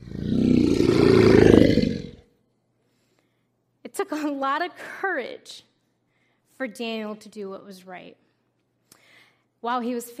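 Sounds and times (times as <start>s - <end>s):
lions roaring: 0.0s - 2.2s
speech: 4.1s - 5.7s, 6.6s - 8.2s, 9.6s - 10.1s.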